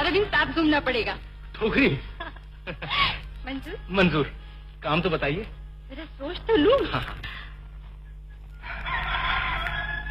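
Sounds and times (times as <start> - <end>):
steady low hum: 0.0 - 10.0
speech: 0.5 - 7.4
chicken crowing: 8.6 - 10.0.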